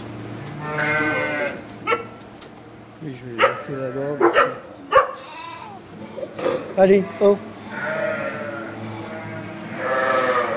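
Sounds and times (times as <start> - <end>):
murmur of a sheep flock: 0.2 - 10.5
ewes bleating on a farm: 0.6 - 1.6, 3.4 - 4.2, 5.1 - 6.1, 6.8 - 10.5
speech: 3.0 - 4.9, 6.8 - 7.5.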